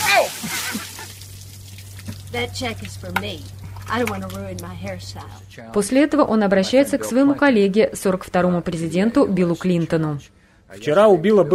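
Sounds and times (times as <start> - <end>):
ice water poured over the head of a seated man: 0.0 - 4.2
speech: 2.3 - 11.5.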